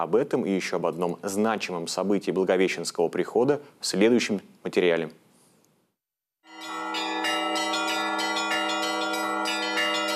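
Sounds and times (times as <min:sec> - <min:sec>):
speech: 0:00.0 - 0:05.2
Annunciation church bells in Ulyanovsk Russia ringing a peal: 0:06.5 - 0:10.1.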